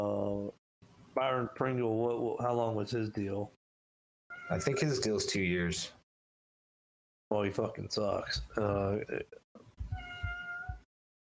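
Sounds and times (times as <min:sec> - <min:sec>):
speech: 0:01.2 - 0:03.6, 0:04.5 - 0:06.0, 0:07.3 - 0:09.4
cat meowing: 0:04.3 - 0:04.8, 0:09.8 - 0:10.9.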